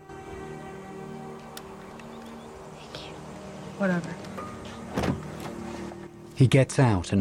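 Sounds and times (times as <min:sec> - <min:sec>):
car power window motor whining as it slides down: 0:00.5 - 0:06.2
speech: 0:03.8 - 0:04.3, 0:06.4 - 0:07.2
soft thuds and rustles: 0:04.6 - 0:05.9.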